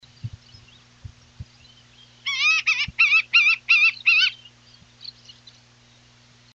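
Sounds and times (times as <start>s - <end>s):
white-tailed hawk singing: 0.0s - 6.0s.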